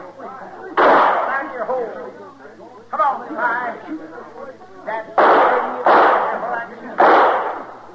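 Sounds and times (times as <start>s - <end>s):
gunshots: 0.8s - 1.5s, 5.2s - 7.8s.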